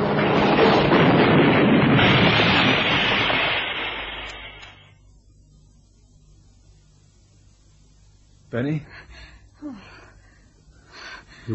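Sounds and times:
car skidding sideways and crashing with grinding noise: 0.0 - 4.6
speech: 8.6 - 10.0.

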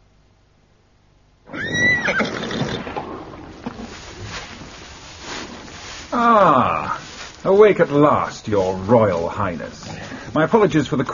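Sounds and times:
horse neighing in a stable at Newmarket: 1.5 - 3.4
horse snorting in a stable at Newmarket: 2.0 - 3.9
horse shuffling in a stable at Newmarket: 2.5 - 11.1
speech: 7.6 - 11.1.

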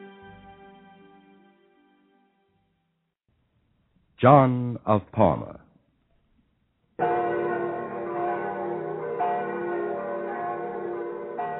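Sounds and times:
speech: 4.2 - 5.6
church bells ringing in a peal: 7.0 - 11.5.

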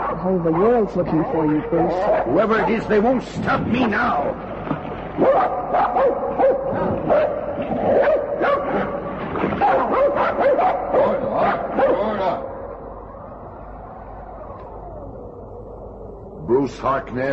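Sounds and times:
pack of sled dogs barking and yipping: 0.0 - 3.0, 5.2 - 12.6
speech: 0.2 - 8.5, 16.5 - 17.3.

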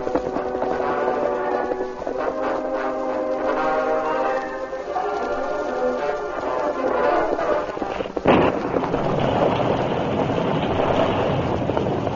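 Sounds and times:
sustained musical passage: 0.0 - 7.8
storm noise roaring: 0.0 - 12.1
sudden sharp thunderclap: 0.0 - 12.1.

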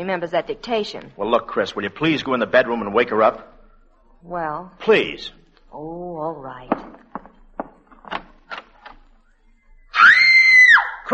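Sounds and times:
speech: 0.0 - 3.5, 4.2 - 6.8
scattered knocks and footstep-like thumps: 6.6 - 9.1
loud sustained woman's scream rising in pitch: 9.9 - 11.1.

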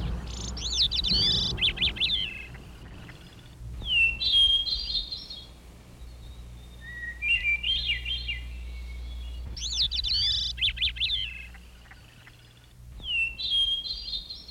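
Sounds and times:
birds chirping at dawn: 0.0 - 14.4
low steady rumble: 0.0 - 14.4.

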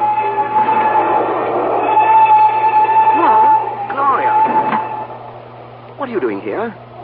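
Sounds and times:
train rumbling and gaining speed: 0.0 - 6.3
high whining tones: 0.0 - 7.0
speech: 6.4 - 7.0.

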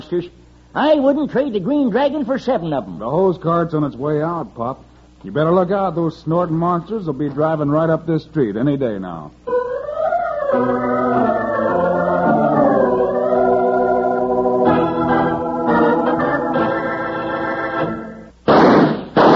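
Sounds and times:
speech: 0.0 - 9.4, 10.5 - 10.8
brassy sustained music: 9.5 - 18.3
gunshot-like bangs: 18.5 - 19.3.

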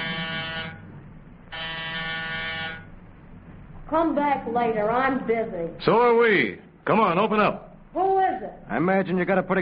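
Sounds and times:
apartment door buzzer: 0.0 - 0.9, 1.5 - 2.9
low hum: 0.0 - 9.6
speech: 3.9 - 9.6.

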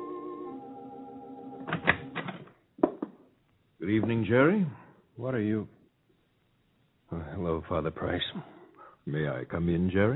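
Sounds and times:
sustained musical tone: 0.0 - 1.6
speech: 3.9 - 5.8, 7.4 - 10.1.

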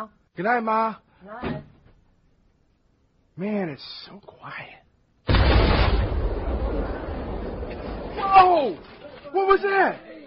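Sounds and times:
speech: 0.0 - 1.6, 3.4 - 4.8, 8.2 - 10.1
car blowing up in loud explosion outside: 5.3 - 8.5.

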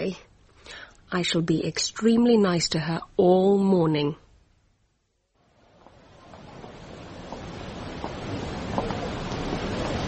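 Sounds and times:
speech: 0.1 - 0.3, 1.1 - 4.2
river in torrent after recent rain roaring: 5.5 - 10.0.

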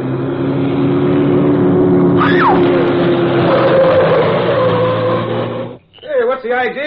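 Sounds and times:
car engine droning moving down a driveway: 0.0 - 6.0.

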